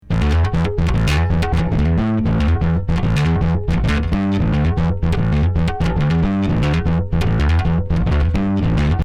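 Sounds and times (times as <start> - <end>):
Microbass bass: 0.0 - 9.0.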